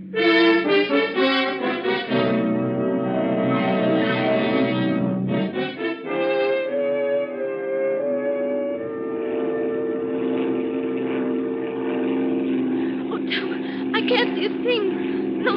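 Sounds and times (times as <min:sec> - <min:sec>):
small propeller plane engine droning in flight through rough weather: 0:00.0 - 0:15.5
people speaking: 0:12.9 - 0:15.5.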